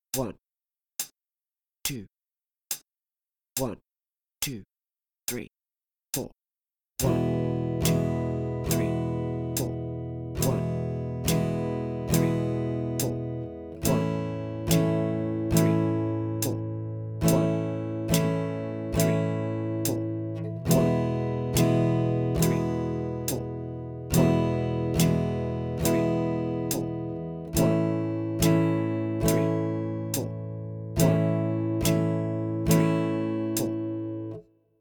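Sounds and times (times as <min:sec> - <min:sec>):
guitar chords: 0:07.0 - 0:34.4.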